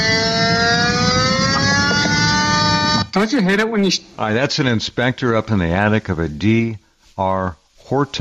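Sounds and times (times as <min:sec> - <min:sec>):
rumbling noise: 0:00.0 - 0:03.1
gas detector meter whining on detecting a gas leak in a house attic: 0:00.0 - 0:03.3
speech: 0:03.2 - 0:08.2.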